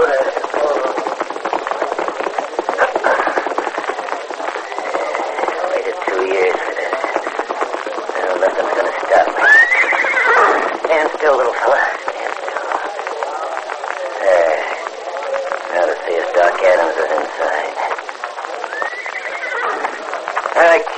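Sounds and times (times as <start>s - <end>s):
tiny pony's hooves at a hitch rack: 0.0s - 20.9s
voices: 0.0s - 20.9s
tiny pony whinnying: 4.6s - 5.6s, 9.3s - 10.8s, 18.6s - 20.1s.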